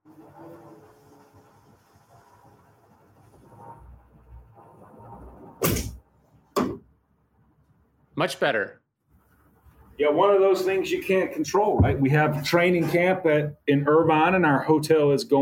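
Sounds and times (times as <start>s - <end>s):
door pushed shut with two sharp knocks: 6.6s - 6.9s, 11.7s - 12.2s
speech: 8.2s - 8.8s, 10.0s - 15.3s.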